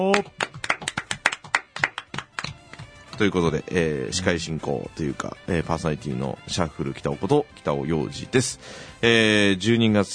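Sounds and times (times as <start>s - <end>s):
speech: 0.0s - 0.5s, 3.2s - 10.1s
hands clapping in a studio: 0.0s - 3.4s.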